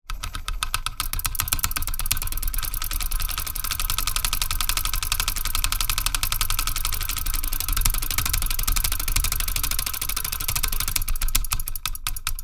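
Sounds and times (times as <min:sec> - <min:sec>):
bench grinder rattling: 0:00.0 - 0:12.4.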